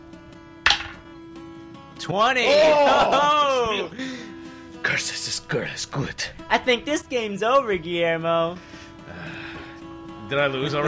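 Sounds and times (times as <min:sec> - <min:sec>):
archery game arrow striking a target: 0:00.7 - 0:01.1
speech: 0:02.0 - 0:04.1, 0:04.8 - 0:09.4, 0:10.3 - 0:10.8
laughter: 0:02.5 - 0:04.2.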